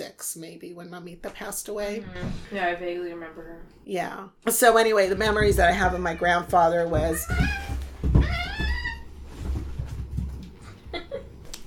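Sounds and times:
speech: 0:00.1 - 0:07.8
cat yowling: 0:07.2 - 0:09.2.

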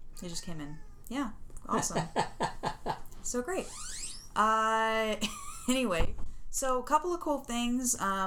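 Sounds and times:
domestic cat meowing in an apartment: 0:00.2 - 0:01.1
speech: 0:00.2 - 0:08.2
laughter: 0:01.8 - 0:03.1.

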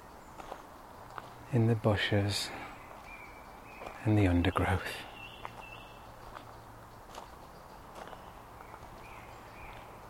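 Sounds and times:
faint bird chirps: 0:00.0 - 0:10.0
soft footsteps crunching outdoors: 0:00.2 - 0:01.7, 0:02.7 - 0:04.4, 0:05.3 - 0:10.0
speech: 0:01.5 - 0:02.6, 0:04.0 - 0:05.1.

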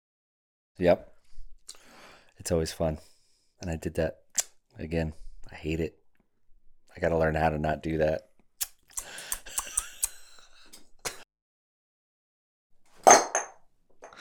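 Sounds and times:
speech: 0:00.8 - 0:01.1, 0:02.4 - 0:04.2, 0:04.8 - 0:06.0, 0:07.0 - 0:08.3
phone dropping into a whiskey glass: 0:13.0 - 0:13.6.

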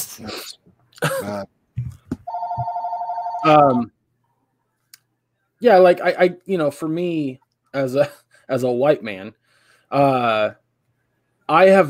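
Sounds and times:
speech: 0:00.2 - 0:01.6, 0:03.4 - 0:04.0, 0:05.6 - 0:10.6, 0:11.5 - 0:11.8
cough: 0:01.0 - 0:01.5
throat clearing: 0:01.0 - 0:01.5
telephone ringing with warbling electronic tone: 0:02.3 - 0:03.8.

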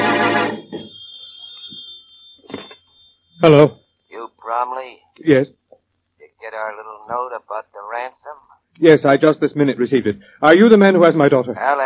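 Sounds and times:
telephone ringing with a brassy bell: 0:00.0 - 0:03.6
thin high tone: 0:00.0 - 0:04.5
speech: 0:03.4 - 0:03.8, 0:04.5 - 0:05.6, 0:06.4 - 0:11.8.

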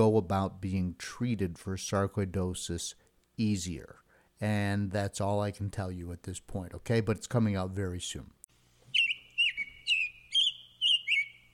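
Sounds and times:
speech: 0:00.0 - 0:08.4
backyard birds chirping: 0:08.9 - 0:11.5.

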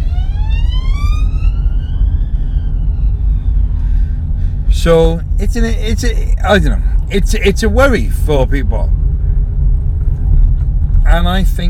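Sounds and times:
siren of a passing vehicle: 0:00.0 - 0:04.1
low rumble of traffic and engine noise: 0:00.0 - 0:11.6
speech: 0:04.8 - 0:09.0, 0:11.1 - 0:11.6.

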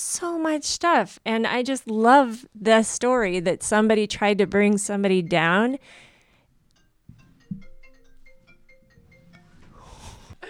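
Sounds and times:
speech: 0:00.0 - 0:06.0
iPad ringtone of bright electronic notes: 0:06.8 - 0:10.4.

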